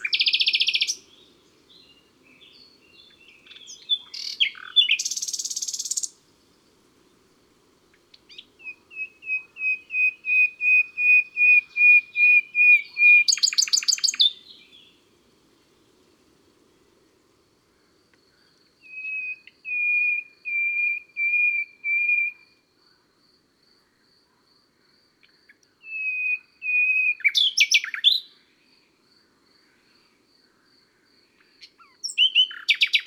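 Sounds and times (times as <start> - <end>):
nightingale singing: 0.0 - 7.3, 7.9 - 15.1, 18.8 - 22.5, 25.2 - 28.4, 31.4 - 33.0.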